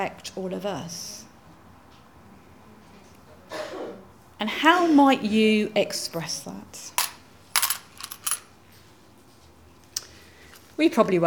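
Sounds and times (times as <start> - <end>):
speech: 0.0 - 1.2, 4.4 - 7.0, 10.8 - 11.2
coins thrown and clattering across a hard floor: 7.0 - 8.5.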